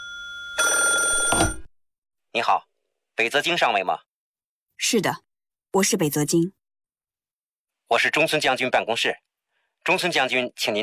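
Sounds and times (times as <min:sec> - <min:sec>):
telephone bell ringing in a dormitory: 0:00.0 - 0:01.7
speech: 0:02.4 - 0:04.1, 0:04.8 - 0:06.6, 0:07.9 - 0:10.8.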